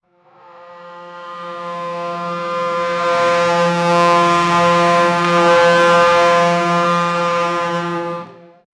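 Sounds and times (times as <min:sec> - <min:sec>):
F1 car taking curves: 0:00.7 - 0:08.6.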